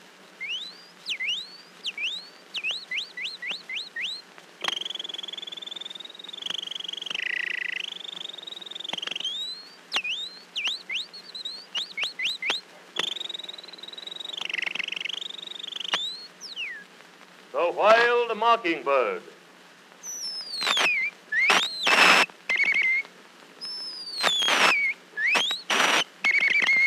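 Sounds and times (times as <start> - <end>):
person whistling an imitation of canary song: 0.4 - 6.5, 8.2 - 16.8, 20.1 - 23.0, 23.6 - 26.8
speech: 17.8 - 19.3.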